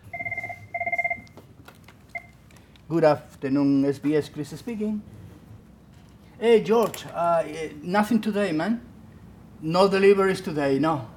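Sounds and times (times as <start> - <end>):
office telephone ringing with trilling electronic bursts: 0.0 - 1.3
low hum: 0.0 - 11.1
speech: 2.9 - 5.2, 6.4 - 8.9, 9.6 - 11.1.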